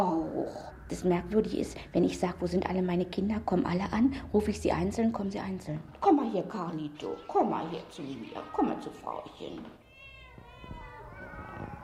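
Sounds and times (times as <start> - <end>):
speech: 0.0 - 9.8
cat meowing: 7.1 - 9.1, 9.8 - 11.8.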